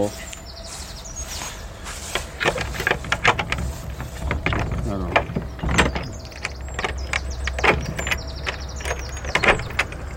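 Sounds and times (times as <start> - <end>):
speech: 0.0 - 0.3
old Gascon door lock being opened, clicking and clunking: 2.1 - 10.1.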